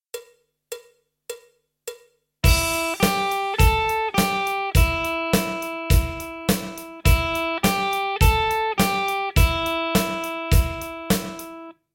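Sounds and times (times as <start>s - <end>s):
blues-rock lick on electric guitars: 2.4s - 11.7s.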